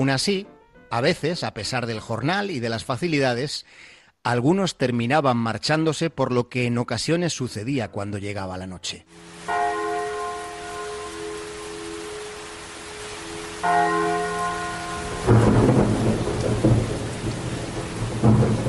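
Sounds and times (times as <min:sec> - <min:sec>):
speech: 0:00.0 - 0:09.3, 0:13.6 - 0:14.1
steady rain: 0:09.1 - 0:18.6
deep church bell tolling at night: 0:09.5 - 0:17.2
rolling thunder: 0:13.6 - 0:18.6.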